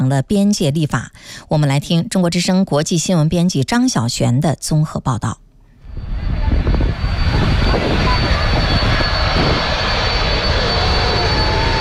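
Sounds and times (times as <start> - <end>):
speech: 0.1 - 5.4
airplane engine droning in flight: 5.5 - 11.8.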